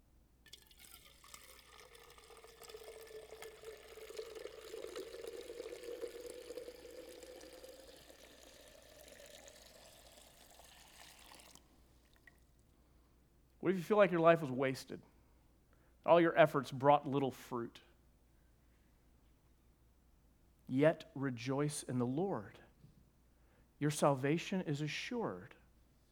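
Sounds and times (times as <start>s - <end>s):
water pouring into a container: 0.5s - 12.6s
speech: 13.7s - 15.1s, 16.1s - 17.9s, 20.7s - 22.6s, 23.8s - 25.6s.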